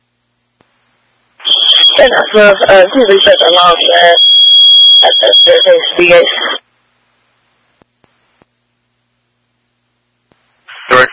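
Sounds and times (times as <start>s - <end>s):
continuous high-pitched electronic alarm tone: 1.4s - 6.5s
man talking: 10.8s - 11.1s.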